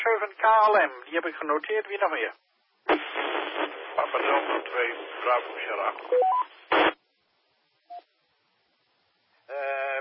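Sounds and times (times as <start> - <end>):
speech: 0.2 - 2.5, 3.5 - 6.9
interference bursts on an amateur radio net: 2.9 - 7.0.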